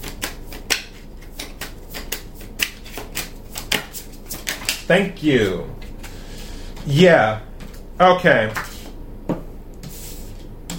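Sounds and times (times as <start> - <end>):
tarot cards being shuffled: 0.0 - 6.2
speech: 4.9 - 5.8, 6.8 - 8.6.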